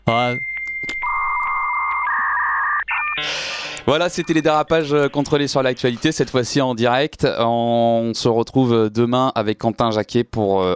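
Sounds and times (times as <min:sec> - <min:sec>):
speech: 0:00.1 - 0:00.5, 0:03.2 - 0:10.7
dial-up modem connection sequence: 0:00.5 - 0:06.1.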